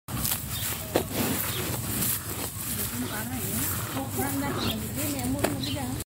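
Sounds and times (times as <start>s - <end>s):
cow eating grass: 0.1s - 6.0s.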